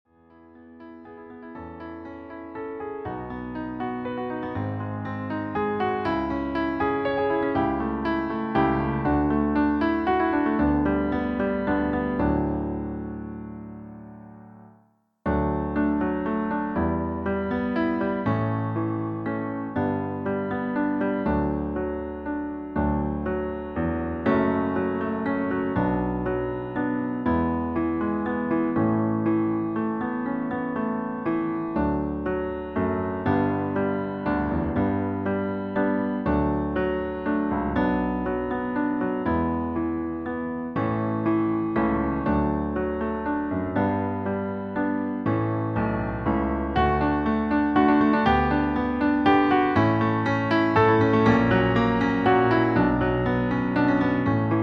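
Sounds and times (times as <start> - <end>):
grand piano playback version: 0.2 - 54.6.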